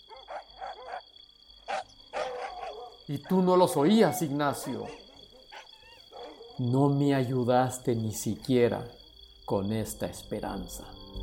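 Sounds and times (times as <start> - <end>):
several dogs barking: 0.0 - 7.0
speech: 3.1 - 5.0, 6.6 - 11.2.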